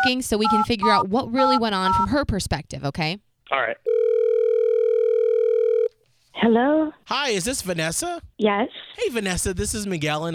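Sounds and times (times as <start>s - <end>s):
speech: 0.0s - 4.0s, 6.4s - 10.3s
telephone dial tone while placing a call: 1.4s - 2.0s, 3.9s - 6.0s.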